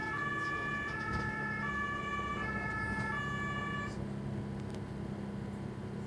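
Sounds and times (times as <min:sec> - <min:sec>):
ambulance siren wailing two-tone on beach promenade answering lifeguards' emergency call: 0:00.0 - 0:04.0
ambulance engine rumble: 0:00.0 - 0:06.0.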